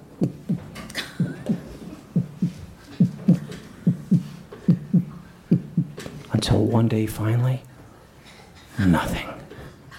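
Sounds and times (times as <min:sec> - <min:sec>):
low soft drum thumps in paired beats: 0:00.0 - 0:06.0
speech: 0:06.7 - 0:07.7, 0:08.8 - 0:09.4.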